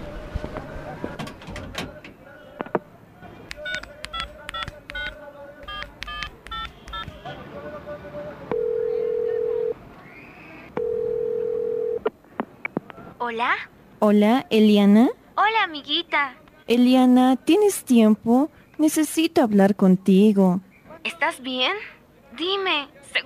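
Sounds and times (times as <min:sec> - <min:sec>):
telephone push-button keypad beeps: 0:03.6 - 0:07.2
telephone ringback tones: 0:08.5 - 0:09.8, 0:10.8 - 0:12.0
speech: 0:13.3 - 0:23.2.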